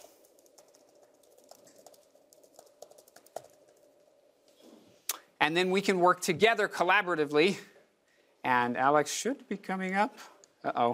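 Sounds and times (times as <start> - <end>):
typing on a computer keyboard to edit a shared document: 0.0 - 4.2
speech: 5.5 - 7.7, 8.4 - 10.9.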